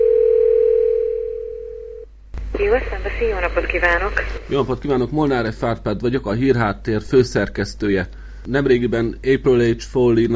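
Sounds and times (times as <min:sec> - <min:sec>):
telephone line tone as a call is placed: 0:00.0 - 0:02.1
speech: 0:02.6 - 0:10.3.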